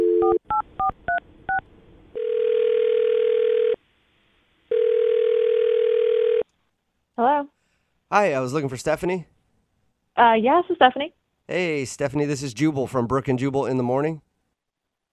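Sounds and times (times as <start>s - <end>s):
buzzing phone ringing tone on the line: 0.0s - 0.9s, 2.2s - 3.8s, 4.7s - 6.4s
speech: 8.2s - 9.3s, 10.2s - 14.2s.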